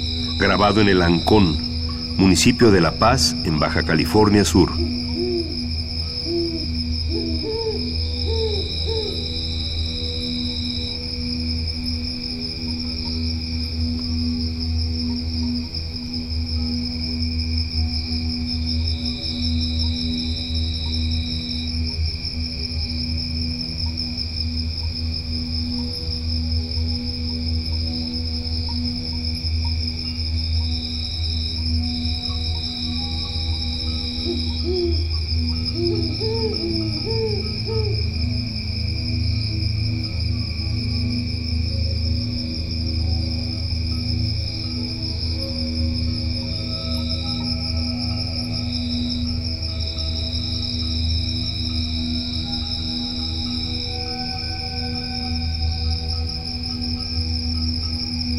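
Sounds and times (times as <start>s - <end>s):
crickets chirping at night in El Ancón Baja California Sur: 0.0s - 58.3s
insects buzzing at night: 0.0s - 58.3s
owls hooting at night in El Ancón Baja California Sur Mexico: 0.2s - 10.1s, 33.8s - 38.3s
speech: 0.4s - 5.0s.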